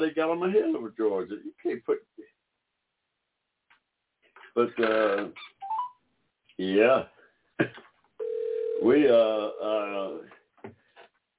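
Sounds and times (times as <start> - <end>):
speech: 0.0 - 2.2, 4.6 - 5.5, 6.6 - 7.8, 8.8 - 10.8
telephone dial tone of an outgoing election call: 8.2 - 8.8.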